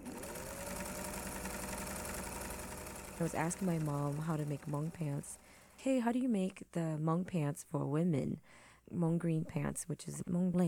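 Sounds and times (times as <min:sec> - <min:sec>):
industrial sewing machine running: 0:00.0 - 0:05.9
speech: 0:03.2 - 0:10.6.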